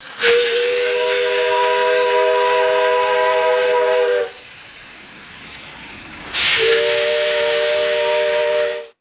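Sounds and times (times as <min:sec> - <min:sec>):
steam engine whistle blowing: 0:00.0 - 0:04.5, 0:06.4 - 0:08.9.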